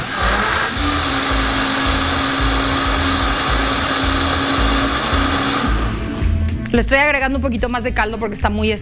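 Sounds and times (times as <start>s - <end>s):
blender pureeing thick mole negro paste: 0.0s - 6.6s
speech: 6.8s - 8.8s.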